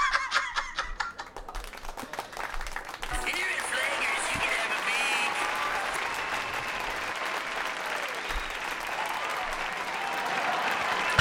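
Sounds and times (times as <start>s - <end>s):
laughter: 0.0s - 1.6s, 3.1s - 11.2s
applause from a large crowd: 1.1s - 11.2s
scattered cheers: 1.4s - 11.2s
voices mixed in with applause: 3.1s - 7.0s.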